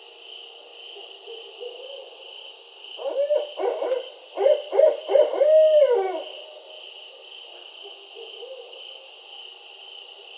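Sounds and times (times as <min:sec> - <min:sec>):
constant high hum: 0:00.0 - 0:10.3
barred owl hooting: 0:03.0 - 0:06.4.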